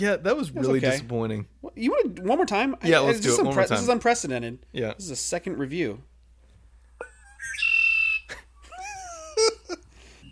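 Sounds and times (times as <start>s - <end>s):
speech: 0.0s - 6.1s
red-winged blackbird calling: 7.0s - 9.1s.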